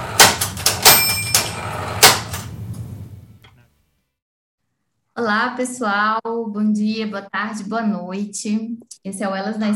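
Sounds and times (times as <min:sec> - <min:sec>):
typewriter bell ding: 0:00.2 - 0:02.3
speech: 0:05.2 - 0:09.7.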